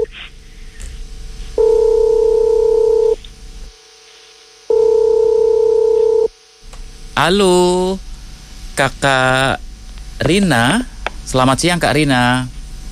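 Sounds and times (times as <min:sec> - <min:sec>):
telephone line tone while placing a call: 0:01.6 - 0:03.2, 0:04.7 - 0:06.3
speech: 0:07.2 - 0:08.0, 0:08.8 - 0:09.6, 0:10.2 - 0:12.6.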